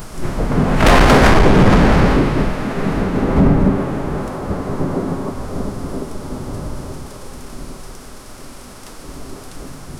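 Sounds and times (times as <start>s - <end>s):
intense thunderstorm: 0.0s - 7.9s.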